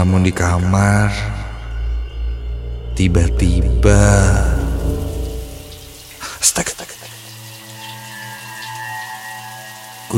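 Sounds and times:
speech: 0.0 - 1.4, 3.0 - 5.0, 6.4 - 6.7
shower running in a bathroom: 4.0 - 10.1.

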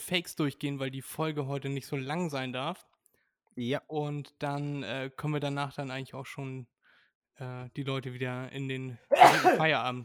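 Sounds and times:
speech: 0.1 - 2.9, 3.6 - 6.7, 7.4 - 10.0
loud sharp sneeze: 9.1 - 9.7.

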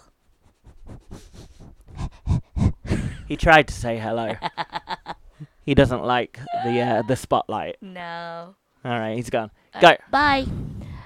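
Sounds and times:
dog panting close to the microphone: 0.3 - 2.9
speech: 3.3 - 4.6, 5.6 - 10.7.

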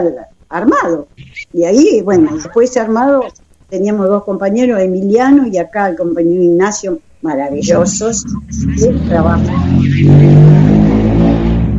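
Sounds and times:
speech: 0.0 - 10.6
car engine droning as the car passes by: 7.5 - 11.7.

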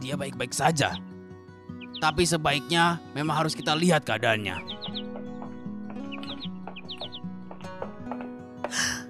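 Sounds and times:
speech: 0.0 - 1.1, 2.0 - 4.8
pet sooty-headed bulbul singing from a tree: 1.7 - 8.4.

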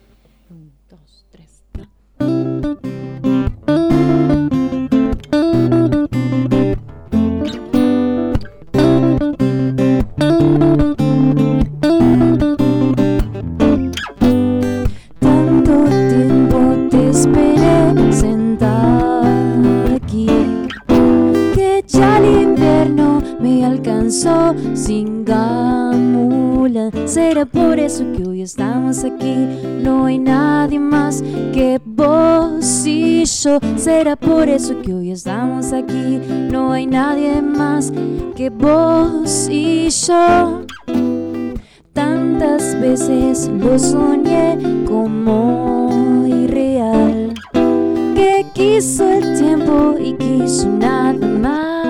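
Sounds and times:
live band guitars: 1.7 - 51.8
vocalist singing with a live band: 14.8 - 40.8, 42.0 - 51.8.

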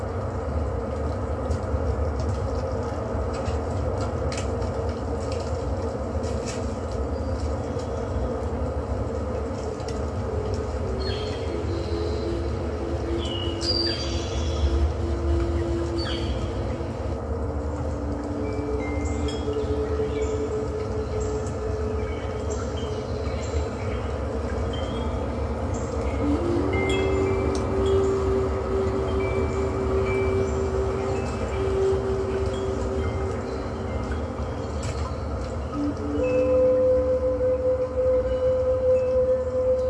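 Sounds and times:
wind rushing through leaves: 0.0 - 39.8.

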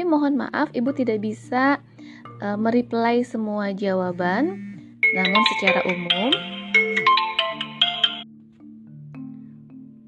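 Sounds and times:
speech: 0.1 - 6.6
incoming call phone ringtone with bright electronic synth melody: 4.6 - 8.3.

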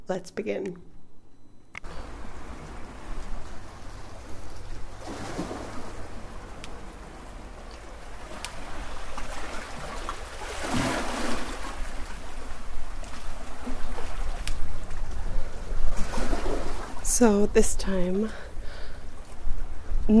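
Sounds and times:
speech: 0.1 - 0.9, 17.2 - 18.5
ocean surf waves breaking on the shore: 1.9 - 17.1.

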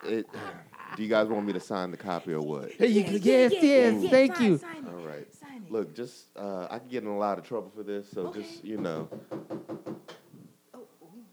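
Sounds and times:
laughter: 0.0 - 5.3
speech: 0.0 - 9.8
knocking on a door: 8.2 - 10.5.

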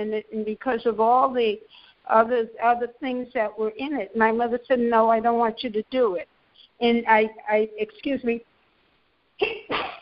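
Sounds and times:
speech: 0.0 - 8.5, 9.4 - 9.9
person sneezing: 9.4 - 10.0.

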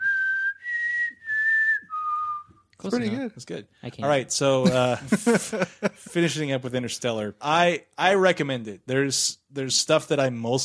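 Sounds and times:
person whistling a short tune: 0.0 - 2.7
speech: 2.8 - 10.6
laughter: 4.6 - 6.2.

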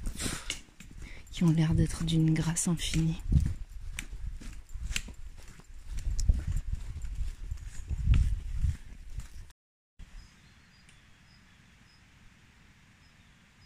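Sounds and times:
horse hooves clip-clopping: 0.0 - 9.5
speech: 1.4 - 3.4.

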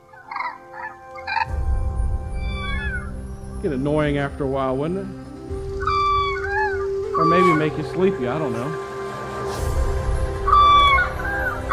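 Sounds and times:
crane bugling calls: 0.0 - 1.6, 5.2 - 11.7
faint rising chirps: 0.8 - 11.7
speech: 3.6 - 5.3, 7.2 - 8.8.

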